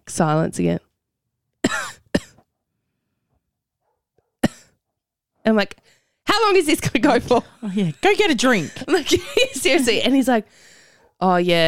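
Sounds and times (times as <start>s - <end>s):
speech: 0.2s - 0.8s, 5.4s - 11.6s
voice imitating a man's coughing fit in bed at night: 1.6s - 2.4s, 4.4s - 4.8s
laughter: 7.0s - 10.2s.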